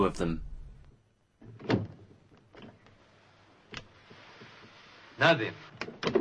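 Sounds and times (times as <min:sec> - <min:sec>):
speech: 0:00.0 - 0:00.5, 0:05.2 - 0:06.1
drawing-room double doors swinging open: 0:01.4 - 0:02.8.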